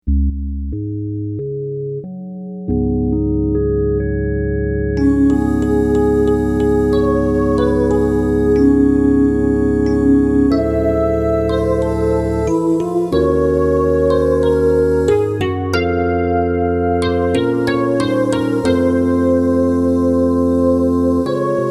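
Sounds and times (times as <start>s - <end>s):
organ study: 0.2s - 21.6s.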